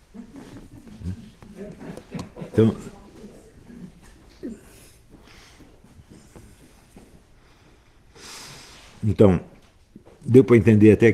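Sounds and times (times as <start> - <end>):
laughter: 0.0 - 4.9
dog growling and grumbling: 0.9 - 1.6
speech: 2.6 - 3.0, 9.1 - 9.5, 10.3 - 11.1.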